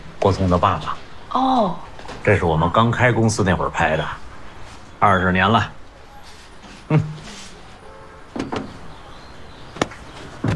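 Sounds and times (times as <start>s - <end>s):
speech: 0.2s - 4.2s, 5.0s - 5.8s, 6.9s - 7.1s
heavy old wooden chair scraping drag: 6.2s - 8.7s.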